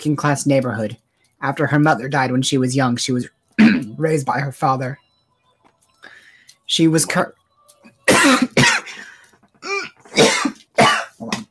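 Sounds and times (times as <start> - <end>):
speech: 0.0 - 5.0, 6.7 - 7.4
person clearing throat with something stuck in it: 3.6 - 4.0, 8.1 - 9.0, 9.6 - 11.4
rough coughing: 3.6 - 4.0, 8.0 - 11.4.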